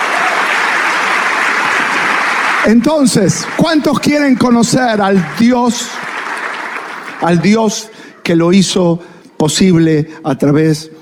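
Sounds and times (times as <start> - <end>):
congregation clapping during a church service: 0.0 - 8.4
speech: 2.6 - 6.0, 7.2 - 10.9.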